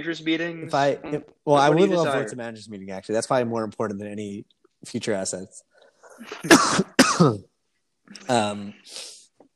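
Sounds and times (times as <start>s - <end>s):
speech: 0.0s - 7.5s, 8.1s - 9.2s
harsh coughs: 6.3s - 7.4s
rough voiced throat clearing: 6.3s - 7.4s.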